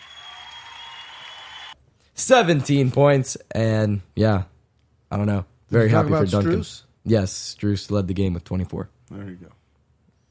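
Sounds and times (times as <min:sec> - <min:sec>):
hands clapping in applause for a basketball player: 0:00.0 - 0:01.8
speech: 0:02.2 - 0:04.5, 0:05.1 - 0:09.6.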